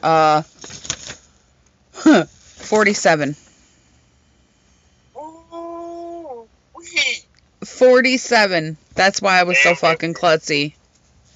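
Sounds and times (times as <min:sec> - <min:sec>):
speech: 0:00.0 - 0:00.8, 0:02.1 - 0:03.4, 0:07.8 - 0:10.8
sheet of paper flipped with a crisp rustle: 0:00.6 - 0:01.3
short voiced sounds from a person: 0:05.2 - 0:07.3, 0:09.5 - 0:10.2.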